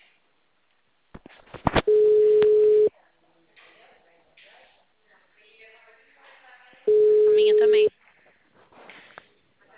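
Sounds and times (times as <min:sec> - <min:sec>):
telephone ringing tone while placing a call: 0:01.9 - 0:02.9, 0:06.9 - 0:07.9.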